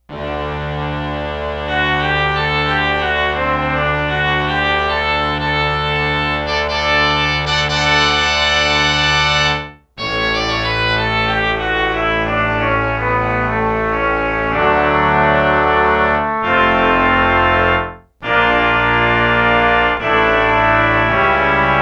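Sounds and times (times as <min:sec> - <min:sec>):
pipe organ brass stop: 0:00.0 - 0:21.8.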